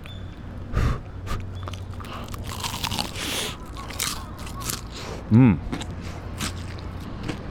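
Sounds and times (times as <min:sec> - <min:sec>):
crackling crunches and chewing of fried karaage chicken: 0:01.1 - 0:07.5
crunchy bite into freshly fried karaage chicken seasoned with soy and mirin: 0:01.6 - 0:05.0
speech: 0:05.3 - 0:05.8.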